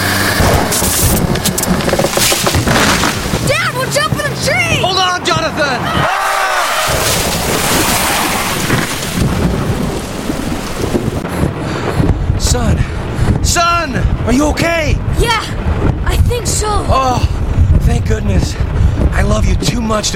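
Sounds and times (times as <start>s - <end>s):
deep rumbling thunder: 0.0s - 20.1s
heavy rain pouring in a storm: 0.0s - 20.1s
speech: 19.4s - 20.1s.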